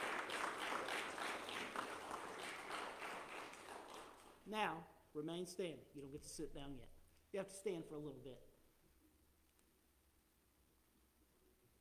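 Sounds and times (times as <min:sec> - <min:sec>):
church audience applauding during a morning service: 0:00.0 - 0:04.4
speech: 0:04.5 - 0:08.5.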